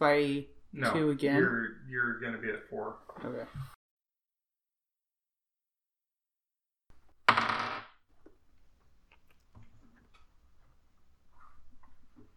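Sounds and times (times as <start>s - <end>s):
speech: 0.0s - 3.8s
dice rolling on a table: 7.2s - 8.0s.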